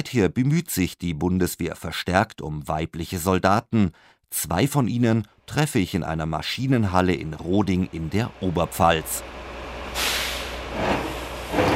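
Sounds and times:
speech: 0.1 - 9.4
low engine rumble of military vehicles driven into a maintenance hall: 6.7 - 11.7
air brakes hissing on military vehicles in a maintenance hall: 9.3 - 11.7.

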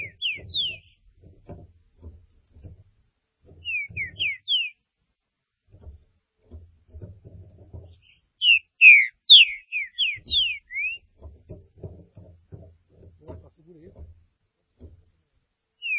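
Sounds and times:
green-winged saltator singing whistled notes: 0.0 - 1.0, 3.6 - 4.8, 8.0 - 11.0
faint low knocking: 0.0 - 8.5, 9.5 - 15.9.

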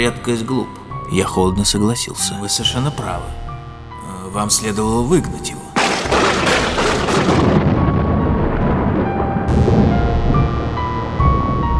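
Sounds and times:
speech: 0.0 - 3.5, 4.3 - 5.6
thunder in a storm: 5.8 - 11.7
strengthening wind in a storm: 7.2 - 11.7.

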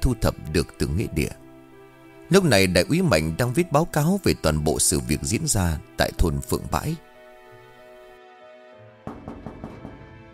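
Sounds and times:
speech: 0.0 - 1.4, 2.3 - 7.1
knocking on a room door: 9.0 - 10.3.

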